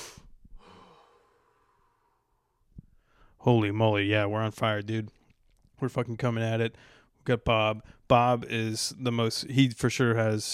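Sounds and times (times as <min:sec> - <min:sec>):
deep breath let out like a sigh: 0:00.0 - 0:03.4, 0:06.7 - 0:07.2
speech: 0:03.4 - 0:05.2, 0:05.8 - 0:10.5.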